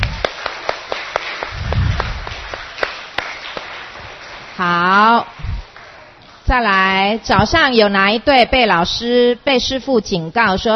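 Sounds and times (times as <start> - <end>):
scattered hand claps: 0.0 - 4.6
brief low rumble: 1.5 - 2.4
speech: 4.6 - 5.3, 6.5 - 10.7.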